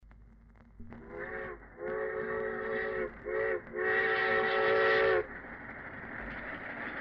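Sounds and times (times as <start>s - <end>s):
G-5 steam whistle in Hicksville: 1.0s - 5.3s.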